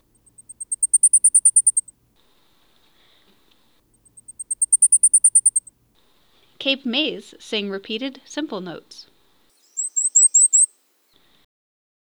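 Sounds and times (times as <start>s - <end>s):
blackpoll warbler singing: 0.0s - 1.9s, 4.1s - 5.7s, 7.0s - 10.7s
speech: 6.6s - 9.1s.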